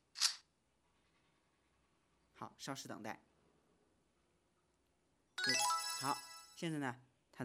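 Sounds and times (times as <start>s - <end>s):
speech: 2.4s - 3.3s, 6.0s - 7.4s
phone app shake feature match-found chime: 5.4s - 6.6s.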